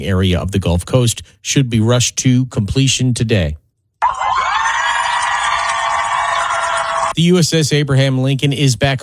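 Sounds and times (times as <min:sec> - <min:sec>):
speech: 0:00.0 - 0:03.6, 0:07.2 - 0:09.0
large crowd cheering and screaming: 0:04.0 - 0:07.2.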